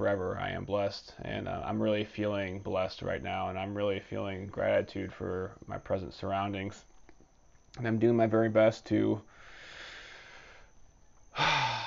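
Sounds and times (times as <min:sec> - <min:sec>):
speech: 0:00.0 - 0:06.9, 0:07.7 - 0:09.4
slow deep breathing as a deliberate breathing exercise: 0:09.3 - 0:11.8.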